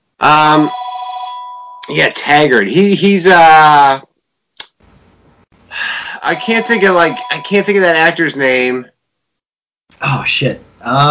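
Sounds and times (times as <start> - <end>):
speech: 0.2 - 0.8, 1.9 - 4.1, 6.2 - 8.9, 10.0 - 11.0
landline telephone ringing: 0.3 - 1.8, 6.2 - 8.2.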